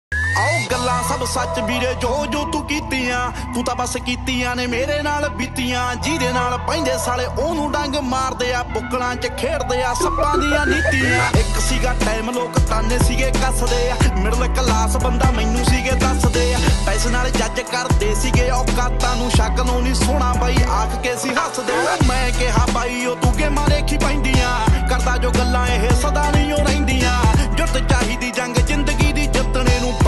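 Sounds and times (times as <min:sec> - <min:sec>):
Punjabi song: 0:00.4 - 0:30.0.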